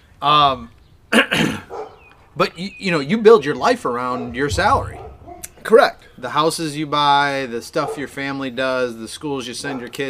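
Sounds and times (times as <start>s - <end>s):
speech: 0.2s - 1.6s, 2.4s - 5.0s, 5.6s - 10.0s
dog barking: 1.7s - 2.0s.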